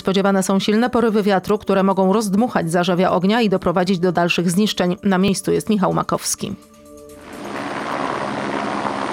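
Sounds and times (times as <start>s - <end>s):
speech: 0.0s - 6.8s
police helicopters filling an underslung bucket from a reservoir during a forest fire: 7.2s - 9.1s.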